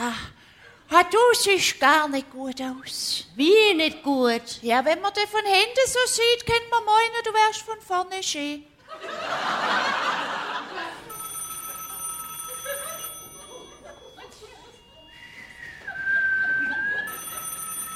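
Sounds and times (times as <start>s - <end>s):
speech: 1.0s - 10.0s
laughter: 8.8s - 17.7s
telephone ringing in electronic bursts: 11.0s - 15.2s, 16.6s - 17.9s.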